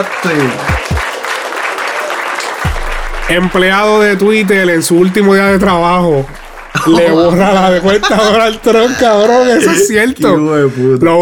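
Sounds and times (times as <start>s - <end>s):
speech: 0.0s - 1.0s, 3.3s - 11.2s
crowd applause sound effect: 0.0s - 9.6s
low thumps: 2.7s - 8.9s
laughter: 5.5s - 10.5s.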